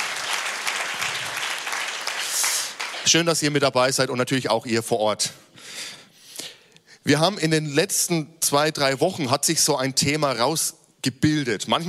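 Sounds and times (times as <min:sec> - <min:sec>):
crowd applause: 0:00.0 - 0:03.1
speech: 0:03.0 - 0:05.4, 0:07.1 - 0:11.8.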